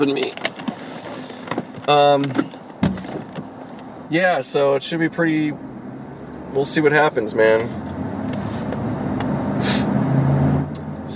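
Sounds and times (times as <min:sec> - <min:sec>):
speech: 0:00.0 - 0:00.5, 0:01.9 - 0:02.5, 0:04.1 - 0:05.7, 0:06.5 - 0:07.9
car engine starting: 0:00.0 - 0:11.1
dull thump: 0:02.8 - 0:03.5.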